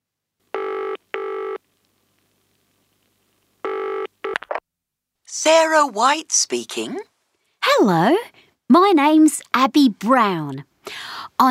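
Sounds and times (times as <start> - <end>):
telephone ringing: 0.6 - 1.6
speech: 5.3 - 7.1, 7.8 - 11.4.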